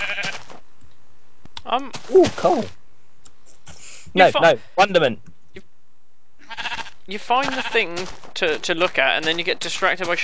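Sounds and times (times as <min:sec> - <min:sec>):
sheep bleating: 0:00.0 - 0:00.5, 0:06.4 - 0:07.9
speech: 0:01.7 - 0:02.8, 0:04.1 - 0:05.3, 0:07.1 - 0:10.2.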